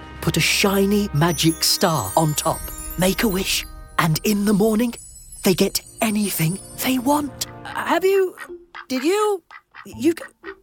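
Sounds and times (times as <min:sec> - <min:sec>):
speech: 0:00.2 - 0:10.6
duck quacking: 0:07.7 - 0:10.6.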